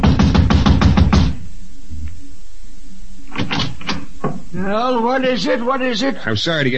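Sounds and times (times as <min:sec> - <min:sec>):
sharp knocking on an apartment door: 0:00.0 - 0:01.4
speech: 0:04.6 - 0:06.7.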